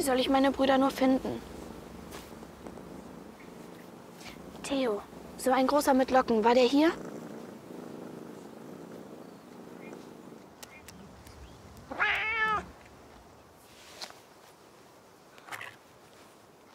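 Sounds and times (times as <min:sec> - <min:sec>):
speech: 0:00.0 - 0:01.6, 0:04.7 - 0:07.1
cat purring: 0:00.0 - 0:12.8
soft rustles: 0:00.0 - 0:16.7
cat meowing: 0:11.9 - 0:12.7.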